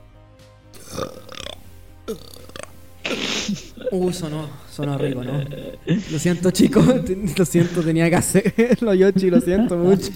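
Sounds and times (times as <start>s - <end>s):
drawn-out gurgling belches: 0.8s - 4.0s, 4.8s - 6.0s
speech: 1.0s - 1.4s, 2.1s - 2.4s, 3.5s - 10.1s
laughter: 4.8s - 10.1s.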